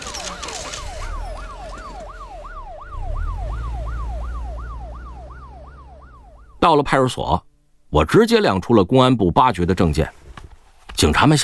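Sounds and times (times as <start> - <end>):
low vehicle rumble: 0.0 - 6.6
police car siren yelping: 0.0 - 6.7
speech: 6.6 - 10.2, 11.0 - 11.4.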